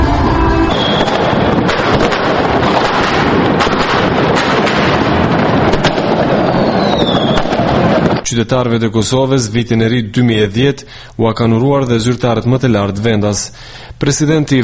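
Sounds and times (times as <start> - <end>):
wind buffeting the microphone: 0.0 - 8.2
fireworks crackling and banging at a New Year celebration in Pristina, Kosovo: 0.0 - 8.3
speech: 8.3 - 14.6.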